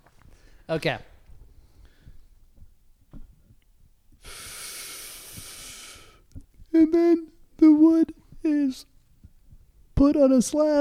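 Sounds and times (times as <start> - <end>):
faint low rumbles: 0.0 - 10.7
deep breath drawn into the microphone: 0.3 - 0.7, 1.4 - 2.7, 4.2 - 6.3
speech: 0.7 - 1.1, 6.8 - 8.9, 10.0 - 10.7.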